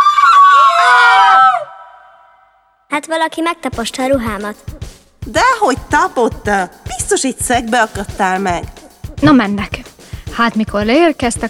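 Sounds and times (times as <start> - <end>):
young princess shrieking when her dress is stepped on, voiced by a performer: 0.0 - 2.2
speech: 3.0 - 9.8, 10.4 - 11.4.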